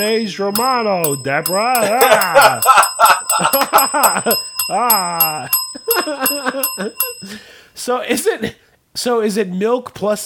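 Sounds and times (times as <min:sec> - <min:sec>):
bell ringing: 0:00.0 - 0:07.6
speech: 0:00.0 - 0:10.2.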